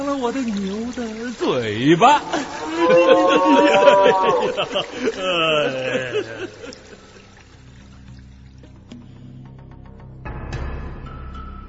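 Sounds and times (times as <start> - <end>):
river water trickling and splashing: 0.0 - 9.6
speech: 0.2 - 7.0
laughter: 2.0 - 7.2
calf mooing while being led to drink at a river: 2.2 - 4.7.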